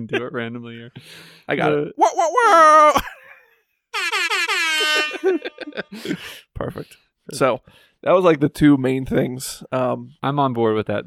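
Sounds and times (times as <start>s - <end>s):
speech: 0.0s - 3.2s, 4.8s - 11.0s
DJ air horn sound effect blasts: 4.0s - 6.0s
laughter: 4.3s - 6.4s.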